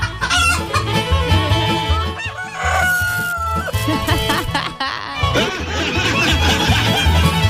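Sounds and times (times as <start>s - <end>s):
flock of chickens clucking: 0.0s - 7.4s
rooster crowing loudly: 2.2s - 3.7s
laughter: 3.4s - 7.4s.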